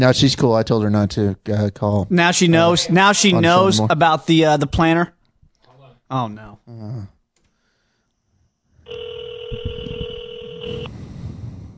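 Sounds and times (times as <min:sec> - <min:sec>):
speech: 0:00.0 - 0:05.2, 0:06.1 - 0:07.2
cell phone electronic dialing tone: 0:08.9 - 0:10.9.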